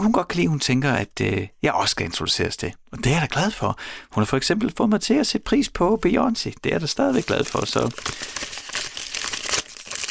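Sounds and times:
speech: 0.0s - 8.9s
paper envelope being torn open and handled: 7.1s - 10.0s.

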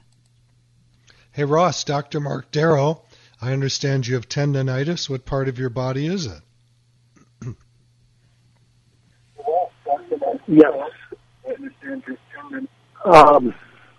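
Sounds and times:
steady low hum: 0.0s - 13.9s
speech: 1.4s - 6.5s, 7.4s - 7.6s, 10.5s - 13.7s
caller's radio voice echoing back over a phone line: 9.4s - 13.6s.

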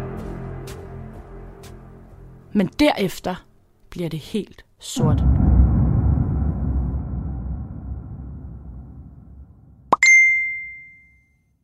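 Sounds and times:
speech: 2.5s - 5.4s
low murky rumble: 5.0s - 9.9s
bright text message notification chime: 10.0s - 11.2s.

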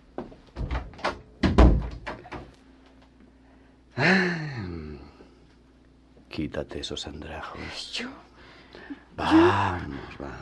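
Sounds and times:
door handled and shut with solid thuds and clatter: 0.6s - 2.5s
speech: 4.0s - 4.4s, 6.4s - 10.4s.

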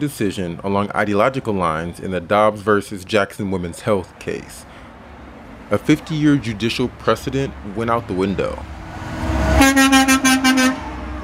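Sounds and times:
speech: 0.0s - 4.7s, 5.7s - 8.8s
low street traffic rumble: 0.0s - 11.2s
car horn honking: 9.4s - 11.2s.

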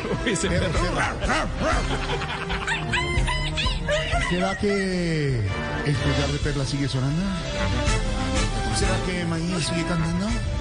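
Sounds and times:
laughter: 0.0s - 5.3s
speech: 0.2s - 3.1s, 3.9s - 8.0s, 8.8s - 10.5s
dog barking: 1.0s - 1.8s.

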